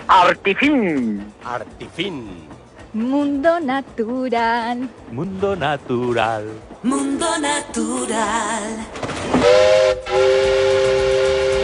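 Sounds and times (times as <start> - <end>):
speech: 0.1 - 11.0
new train's whistle blowing: 9.3 - 11.6.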